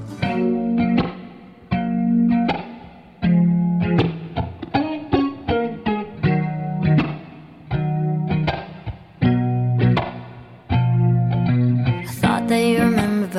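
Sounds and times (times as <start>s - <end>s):
song with rhythmic chord hits: 0.0s - 1.4s
sustained harmonic notes: 0.0s - 1.6s
processed effect-heavy guitar-like tone: 0.0s - 13.3s.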